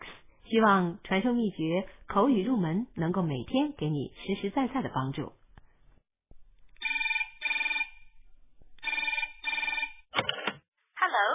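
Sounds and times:
speech: 0:00.5 - 0:05.4
telephone ringing: 0:06.8 - 0:08.2, 0:08.8 - 0:10.1.

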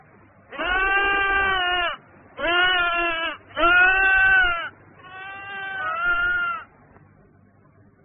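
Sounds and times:
sheep bleating: 0:00.5 - 0:06.7.

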